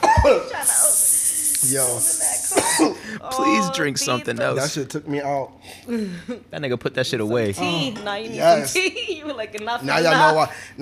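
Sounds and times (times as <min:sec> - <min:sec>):
man stifling a cough: 0:00.0 - 0:00.5, 0:02.6 - 0:03.0
strained hissing breaths: 0:00.6 - 0:03.3
speech: 0:01.6 - 0:10.7.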